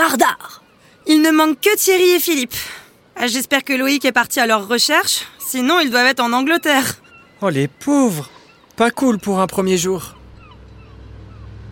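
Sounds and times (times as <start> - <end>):
speech: 0.1 - 10.2
motorboat engine droning: 9.2 - 11.7.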